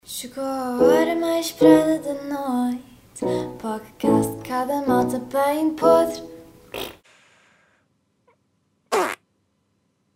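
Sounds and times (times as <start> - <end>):
speech: 0.2 - 6.3
fake fart noises: 6.7 - 7.0, 8.9 - 9.2.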